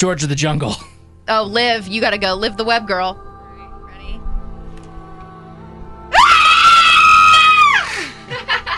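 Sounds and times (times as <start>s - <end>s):
speech: 0.0s - 3.3s
woman screaming at a morning screaming contest: 6.1s - 8.1s
laughter: 7.9s - 8.7s.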